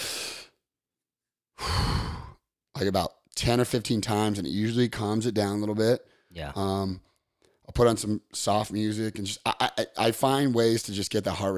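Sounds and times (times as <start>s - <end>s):
deep slow breathing to calm an anxiety attack: 1.6s - 2.5s
speech: 2.8s - 7.1s, 7.7s - 11.5s.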